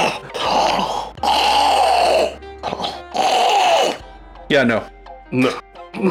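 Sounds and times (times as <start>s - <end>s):
person imitating labored gasping breathing through a mask: 0.0s - 4.1s, 5.4s - 6.0s
speech: 4.5s - 6.0s.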